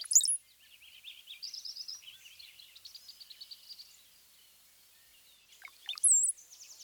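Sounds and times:
Brown-headed Cowbird song with gurgling phrase and piercing high whistle: 0.0s - 3.5s, 5.0s - 6.8s.

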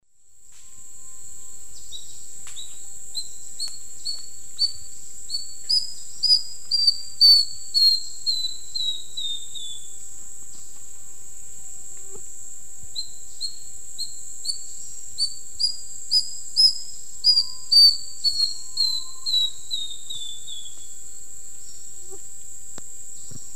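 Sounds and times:
Neopipo cinnamomea song in South American eastern lowlands: 1.0s - 10.0s, 13.0s - 22.2s.

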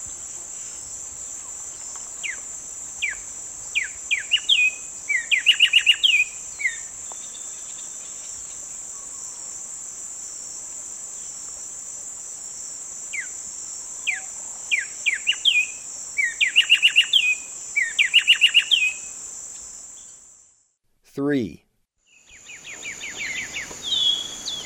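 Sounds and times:
loud continuous insect buzzing: 0.0s - 20.7s, 22.1s - 24.6s
black-striped sparrow singing in eastern lowlands of South America: 3.8s - 8.2s, 14.1s - 19.0s, 22.1s - 24.6s
speech: 21.2s - 21.6s.

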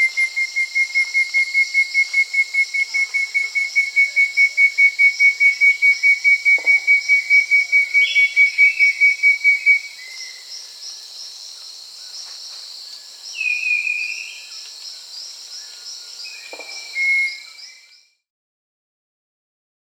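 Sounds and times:
southern nightingale-wren whistling song in South America: 0.0s - 11.0s, 13.3s - 14.9s, 15.5s - 18.2s
loud droning insect hiss in South America: 0.0s - 18.2s.

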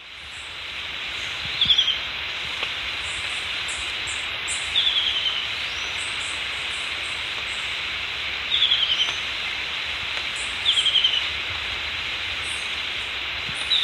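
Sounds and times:
steady hiss: 0.0s - 13.8s
yellow-breasted antwren calling: 1.6s - 2.0s, 3.7s - 6.4s, 8.5s - 9.2s, 10.4s - 11.3s.

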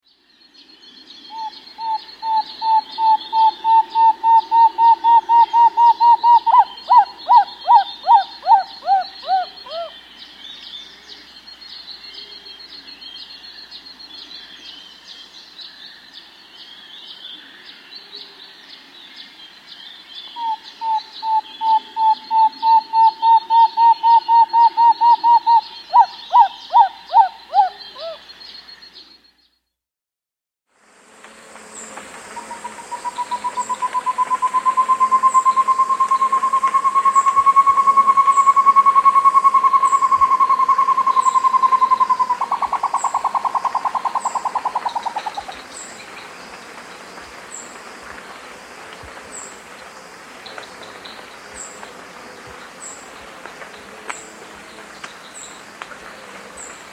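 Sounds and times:
Short-Tailed Antthrush in South America: 1.2s - 10.0s, 20.3s - 29.2s, 32.3s - 46.1s.

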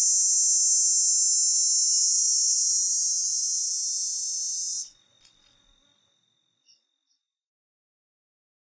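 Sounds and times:
dog-day cicada high intense buzz in North America: 0.0s - 6.0s.

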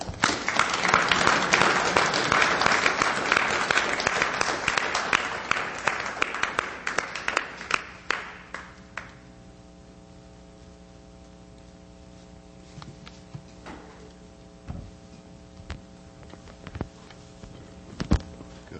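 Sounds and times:
audience applauding: 0.0s - 9.2s.

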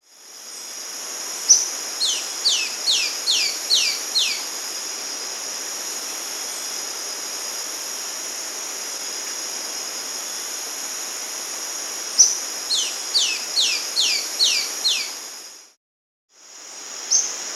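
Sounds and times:
Tawny-breasted flycatcher Myiobius villosus calling in the Andes: 1.5s - 4.6s, 12.2s - 15.2s, 17.1s - 17.4s.

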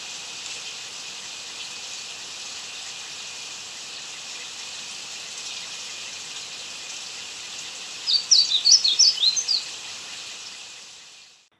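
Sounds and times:
steady hiss: 0.0s - 11.5s
blue seedeater song twittering in Ecuador: 7.4s - 11.1s.

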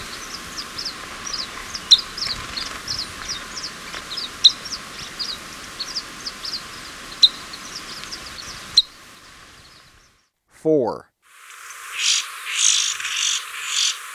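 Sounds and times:
sharp ticks: 0.0s - 8.9s
glossy flowerpiercer thin high chip calls in Ecuador: 0.0s - 10.1s, 11.4s - 14.1s
steady hiss: 0.0s - 10.2s, 11.2s - 14.1s
speech: 10.6s - 11.1s.

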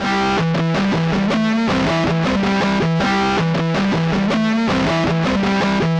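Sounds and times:
rock electric guitar: 0.0s - 5.9s.

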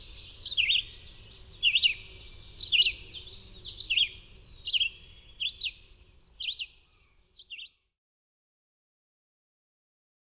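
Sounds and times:
red-eyed vireo song of quick slurred whistled phrases: 0.0s - 7.9s.

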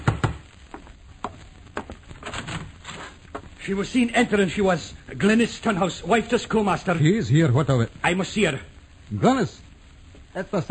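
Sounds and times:
knocking on a door: 0.0s - 0.4s
speech: 3.7s - 9.7s, 10.4s - 10.6s.

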